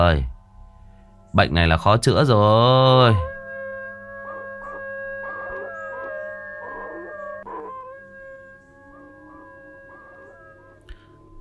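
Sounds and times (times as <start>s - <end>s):
speech: 0.0s - 0.3s, 1.3s - 3.3s
person howling like a dog: 3.2s - 11.1s.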